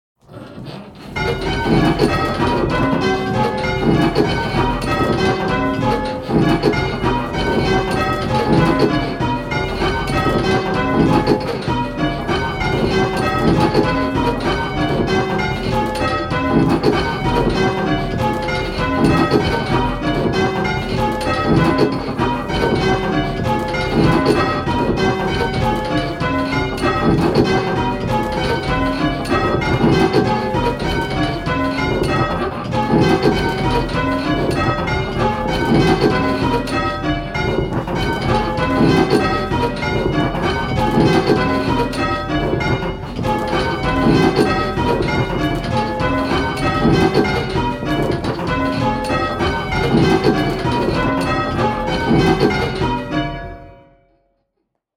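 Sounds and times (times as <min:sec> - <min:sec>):
bells playing an Ionian major scale: 0:01.0 - 0:54.0.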